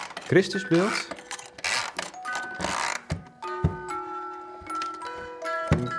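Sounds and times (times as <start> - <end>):
whirring and clicking of the music box mechanism: 0.0 - 3.1
speech: 0.3 - 1.2
mechanical music box playing a slow religious melody: 0.5 - 5.9.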